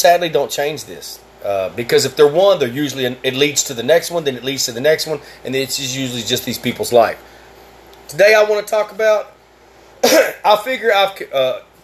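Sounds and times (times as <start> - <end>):
speech: 0.0 - 7.4, 8.1 - 9.4, 10.0 - 11.7
person clearing throat: 10.0 - 10.5.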